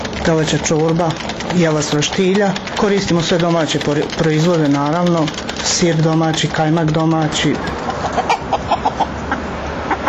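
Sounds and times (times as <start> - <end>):
speech: 0.2 - 8.3
poultry clucking on a farm estate: 6.9 - 10.0.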